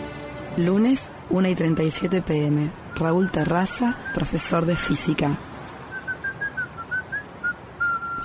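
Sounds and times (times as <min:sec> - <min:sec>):
speech: 0:00.6 - 0:05.5
man whistling a short tune while walking: 0:05.9 - 0:08.2.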